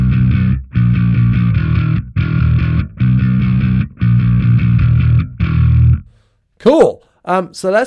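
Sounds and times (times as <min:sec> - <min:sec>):
loud distorted electric bass guitar riff through P-bass pickup: 0:00.0 - 0:06.2
speech: 0:06.6 - 0:07.8.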